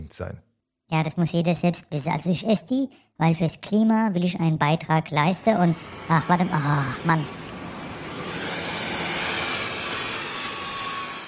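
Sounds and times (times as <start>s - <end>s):
speech: 0.1s - 7.4s
private jet roaring as it flies overhead: 4.6s - 11.2s.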